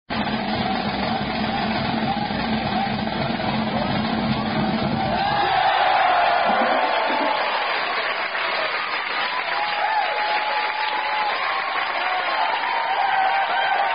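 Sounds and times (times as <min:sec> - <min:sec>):
marching band playing: 0:00.3 - 0:05.4
crowd chanting and cheering: 0:00.6 - 0:13.9
laughter: 0:04.8 - 0:08.2.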